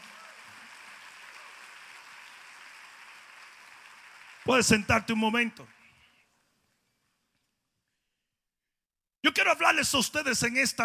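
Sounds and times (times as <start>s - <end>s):
large crowd applauding at a worship service: 0.0s - 6.2s
speech: 4.5s - 5.8s, 9.8s - 10.8s.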